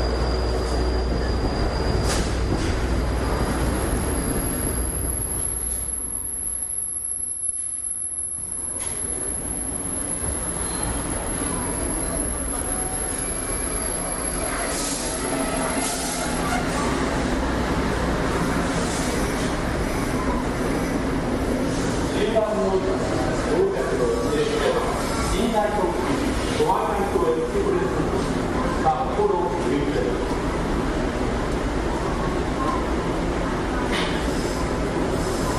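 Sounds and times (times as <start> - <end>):
thin high squeal of train wheels or brakes: 0.0 - 6.0, 10.4 - 16.9
long-distance train pulling into a large station: 0.0 - 35.5
voices and station chatter: 0.0 - 35.5.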